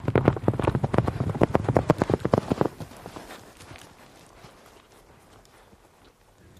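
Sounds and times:
horse galloping in and stopping: 0.0s - 6.5s.

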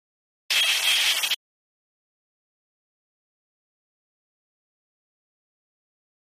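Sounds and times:
piercing high-frequency screeching noise: 0.5s - 1.4s.

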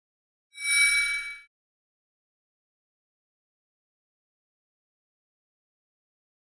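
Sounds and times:
electronic mouse-over sound: 0.6s - 1.5s.

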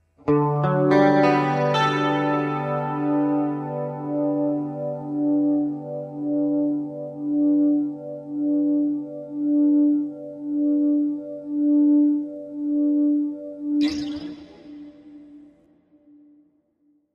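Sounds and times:
melancholy electric guitar: 0.0s - 16.3s.

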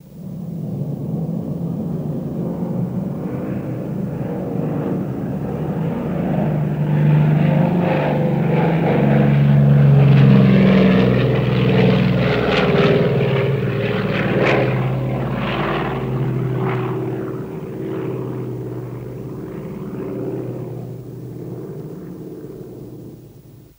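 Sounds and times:
B29 Superfortress bomber flying: 0.0s - 23.7s.

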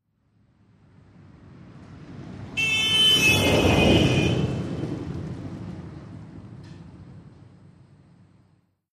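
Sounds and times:
1998 Mitsubishi Montero horn passing with Doppler shift: 2.5s - 4.9s.

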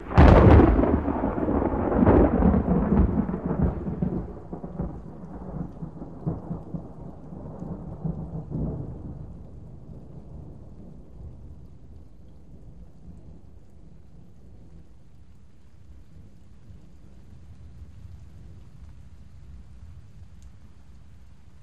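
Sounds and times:
distant thunder crack: 0.0s - 6.8s.

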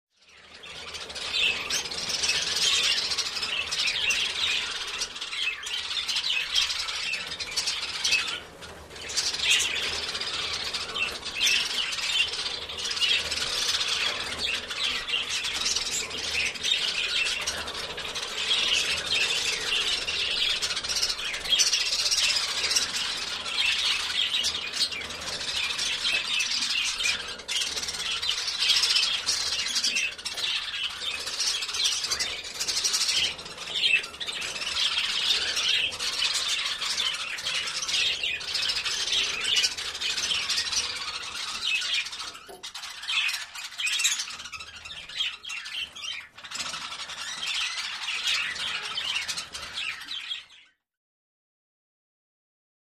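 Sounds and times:
birds chirping in a pet store: 0.2s - 50.8s.

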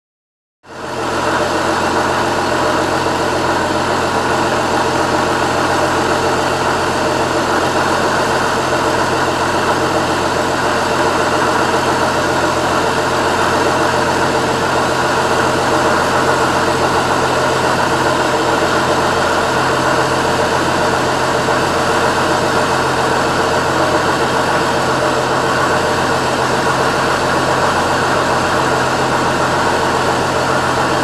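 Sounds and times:
powerboat engine: 0.7s - 31.0s.

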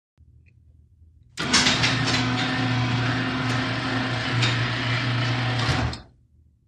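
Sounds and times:
electric garage door operating: 1.4s - 6.1s.

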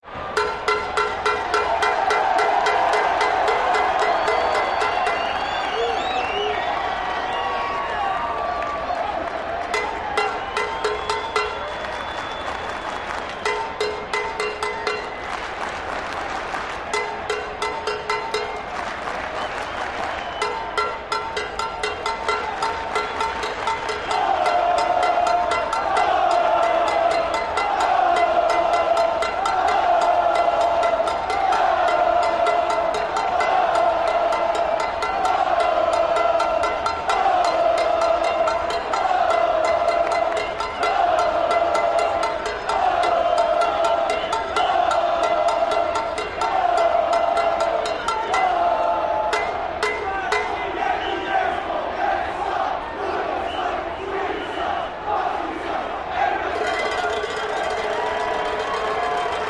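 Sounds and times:
crowd in a sports arena: 0.0s - 59.4s
cowbell ringing in a sports arena: 0.4s - 7.3s, 9.6s - 12.6s, 13.3s - 15.4s, 16.8s - 18.9s, 20.2s - 50.7s, 56.6s - 59.4s.

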